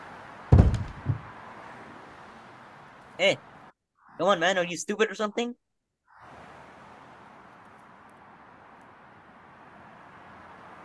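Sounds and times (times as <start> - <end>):
man's body slamming head first into a tree: 0.5 - 1.3
speech: 3.2 - 3.5, 4.2 - 5.6.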